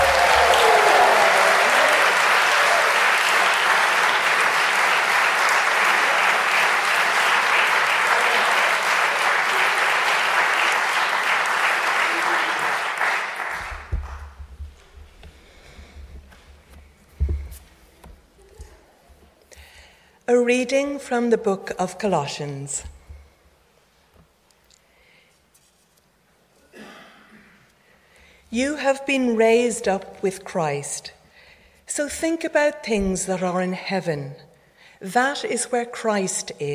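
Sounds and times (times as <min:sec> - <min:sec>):
large audience applause: 0:00.0 - 0:14.4
low thumps: 0:13.7 - 0:18.2
speech: 0:20.5 - 0:23.0, 0:28.6 - 0:31.2, 0:31.9 - 0:36.7.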